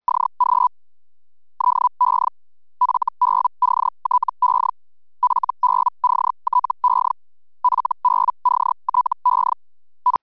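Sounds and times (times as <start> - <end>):
Feldhell radio teleprinter signal: 1.6 - 7.1, 7.7 - 10.2.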